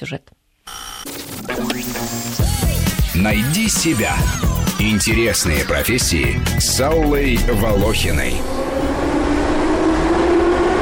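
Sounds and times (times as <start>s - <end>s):
speech: 0.0s - 8.9s
metro train rumbling: 7.2s - 10.8s.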